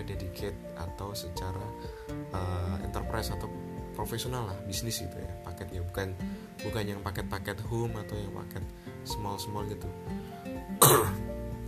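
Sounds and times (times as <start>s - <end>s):
speech: 0.1s - 11.2s
person coughing: 10.8s - 11.3s.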